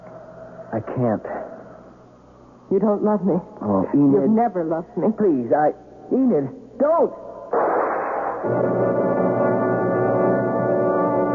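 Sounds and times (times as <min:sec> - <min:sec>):
speech: 0:00.7 - 0:01.5, 0:02.7 - 0:07.6
single loud gunshot: 0:07.5 - 0:08.5
sustained droning musical chord: 0:08.5 - 0:11.3.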